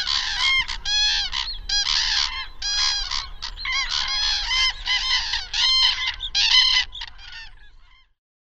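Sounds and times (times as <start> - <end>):
Common cranes giving loud harmonic trumpeting calls: 0.0 - 7.9.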